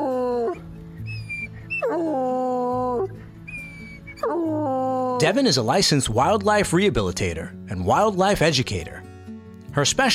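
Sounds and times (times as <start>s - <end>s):
small dog and big old hound dog whimpering and whining in front of a house: 0.0s - 5.4s
speech: 5.2s - 9.0s, 9.8s - 10.1s.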